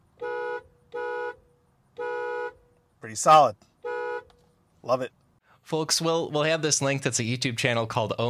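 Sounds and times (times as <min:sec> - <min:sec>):
Acura sports car horn honking: 0:00.0 - 0:02.8, 0:03.8 - 0:04.4
speech: 0:03.1 - 0:03.7, 0:04.8 - 0:08.2.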